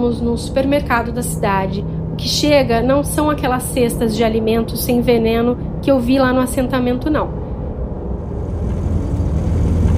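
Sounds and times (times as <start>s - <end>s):
speech: 0.0s - 7.4s
heavy delivery truck engine rumbling as it pulls in: 7.8s - 9.9s.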